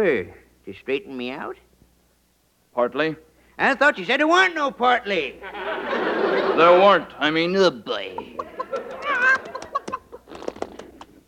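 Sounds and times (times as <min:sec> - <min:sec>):
speech: 0:00.0 - 0:01.7, 0:02.8 - 0:08.6
laughter: 0:05.3 - 0:10.4
person imitating chicken clucks and squawks in a comedy sketch: 0:08.1 - 0:10.1.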